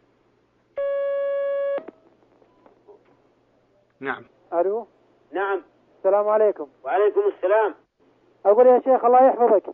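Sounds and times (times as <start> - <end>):
telephone line tone as a caller is connected to a call-in line: 0.8 - 1.8
speech: 4.0 - 7.8, 8.4 - 9.7.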